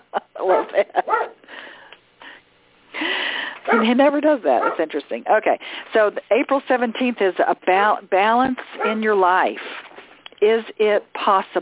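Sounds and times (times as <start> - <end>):
speech: 0.4 - 1.3, 3.7 - 9.7, 10.4 - 11.6
dog barking and yipping: 0.4 - 1.4, 3.7 - 4.0, 4.6 - 4.9, 8.8 - 9.0.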